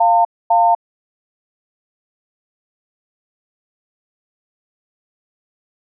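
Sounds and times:
Samsung SCH-M490 T Omnia phone waiting tone: 0.0s - 0.8s.

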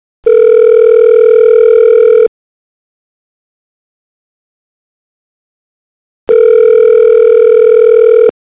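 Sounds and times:
Asus P835 phone ringback tone: 0.2s - 2.3s, 6.3s - 8.4s.

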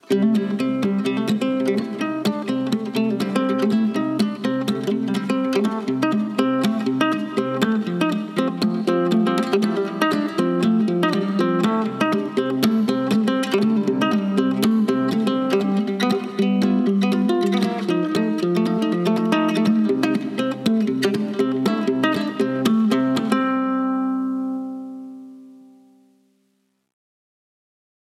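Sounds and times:
country guitar ringtone on a phone: 0.0s - 25.9s.

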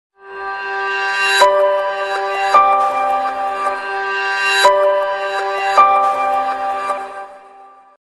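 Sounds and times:
dramatic piano music: 0.2s - 8.0s.

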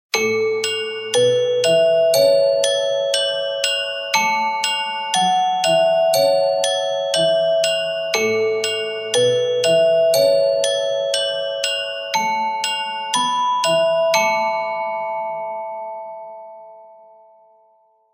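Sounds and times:
bell ringtone from a mobile phone: 0.1s - 17.8s.

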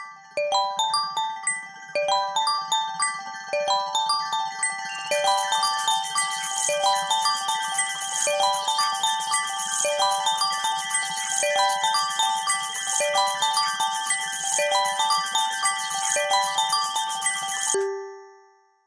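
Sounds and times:
ringtones: 0.5s - 18.0s
glass bubbles: 5.1s - 17.8s.

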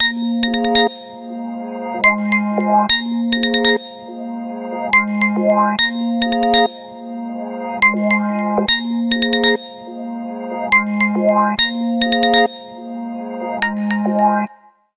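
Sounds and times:
ringtone: 0.0s - 1.3s, 2.0s - 4.2s, 4.9s - 7.1s, 7.8s - 10.0s, 10.7s - 12.9s, 13.5s - 14.9s.

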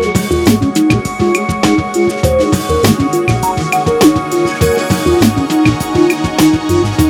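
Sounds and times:
lounge ringtone on a Motorola A1000: 0.1s - 6.9s.

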